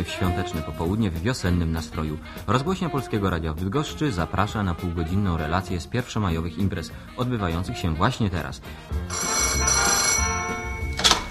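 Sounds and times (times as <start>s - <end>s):
speech: 0.1s - 9.3s
telephone bell ringing: 9.1s - 11.2s.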